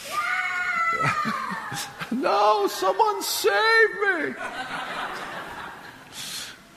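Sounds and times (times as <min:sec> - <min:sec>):
small child screaming in church: 0:00.0 - 0:01.9
laughter: 0:00.9 - 0:02.8, 0:04.2 - 0:06.2
speech: 0:01.0 - 0:05.3.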